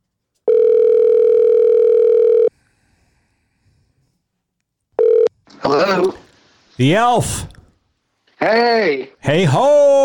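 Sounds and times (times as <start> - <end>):
telephone call ringback tone: 0.5 - 2.5, 5.0 - 5.3
speech: 6.8 - 7.6, 8.4 - 10.0.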